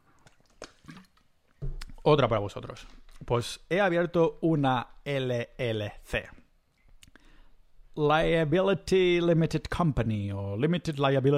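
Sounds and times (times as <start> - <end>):
person taking a big exaggerated gulp of water: 0.0 - 2.0
speech: 2.0 - 6.4, 8.0 - 11.3.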